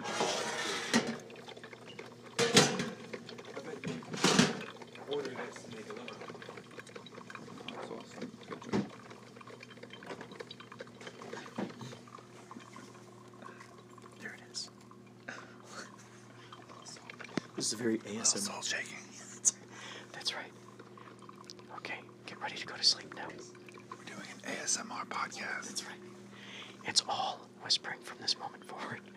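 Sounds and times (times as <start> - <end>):
liquid gurgling and pouring from a brewing coffee pot: 0.0 - 29.1
speech: 17.7 - 19.0.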